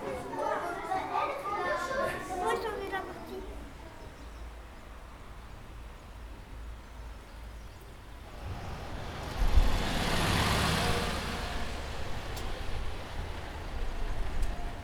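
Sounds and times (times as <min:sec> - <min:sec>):
low traffic rumble: 0:00.0 - 0:14.8
cars driving past on a road: 0:08.1 - 0:14.8.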